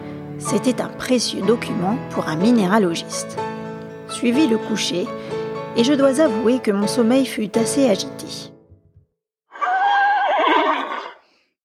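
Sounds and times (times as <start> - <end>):
speech: 0.4 - 3.5, 4.1 - 5.2, 5.8 - 8.5
horse whinny with shaking tremolo pitch: 9.5 - 11.2.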